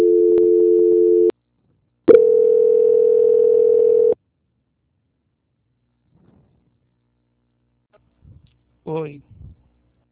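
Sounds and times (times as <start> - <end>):
telephone tones during a call transfer: 0.0 - 1.3, 2.1 - 4.2.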